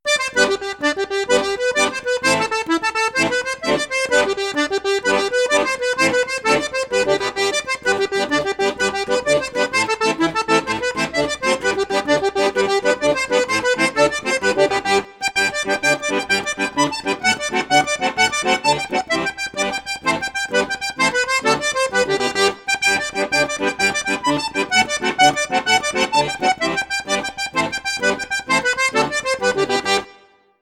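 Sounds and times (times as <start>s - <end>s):
accordion playing in flute and piccolo registers: 0.1s - 30.4s.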